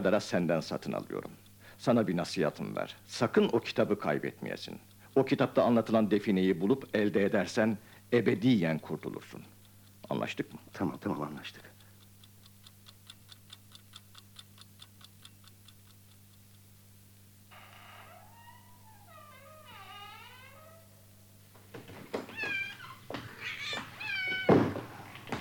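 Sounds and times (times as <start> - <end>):
speech: 0.0 - 9.5, 10.1 - 11.7
steady ticking clock: 0.2 - 7.6, 8.3 - 16.7
cat meowing in a house: 22.3 - 24.7.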